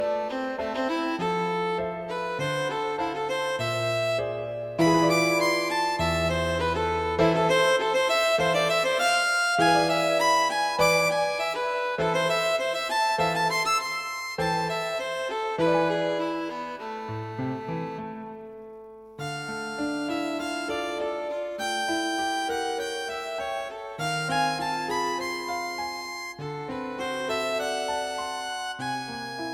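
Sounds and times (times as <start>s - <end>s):
piano: 0.0s - 29.5s
violin: 0.0s - 29.5s.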